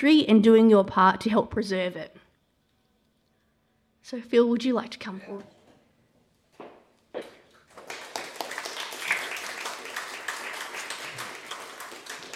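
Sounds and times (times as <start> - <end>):
speech: 0.0 - 2.2, 4.0 - 5.6
audience applause at a public Q&A session: 7.6 - 12.3.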